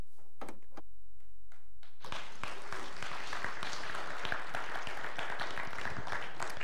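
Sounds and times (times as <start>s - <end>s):
crowd applause and cheering: 2.0s - 6.6s.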